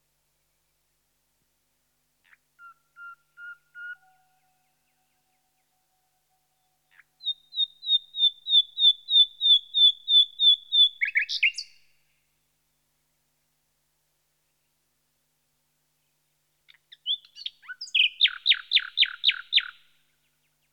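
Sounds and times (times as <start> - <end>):
Common nightingale singing: 2.3 - 11.8, 16.7 - 19.8.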